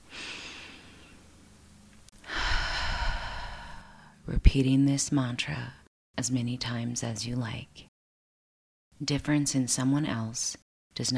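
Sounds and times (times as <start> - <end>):
person inhaling and exhaling in a deliberate breathing exercise during mantra practice: 0.0 - 1.2, 2.2 - 4.2
speech: 4.3 - 7.9, 9.0 - 11.1.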